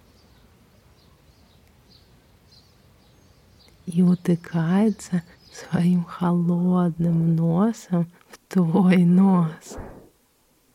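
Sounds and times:
skylark song: 0.0 - 9.7
speech: 3.9 - 9.9
steady hiss of wind or ambient noise: 9.4 - 10.7.

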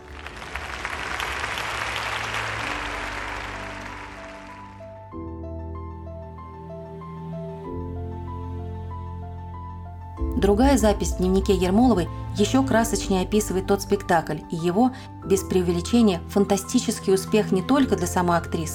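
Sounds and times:
crowd applauding: 0.0 - 5.1
slow music chords: 0.0 - 18.7
speech: 10.4 - 18.7.

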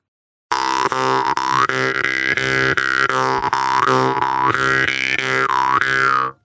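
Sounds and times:
jaw harp twanging with breath: 0.5 - 6.4.

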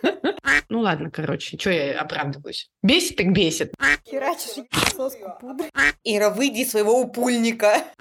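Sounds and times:
laughter: 0.0 - 0.5
speech: 0.7 - 7.9
person imitating duck quacks: 5.6 - 6.0.

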